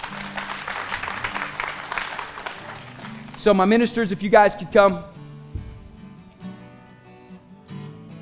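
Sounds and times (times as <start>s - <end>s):
audience applause: 0.0s - 3.8s
speech: 3.4s - 5.2s.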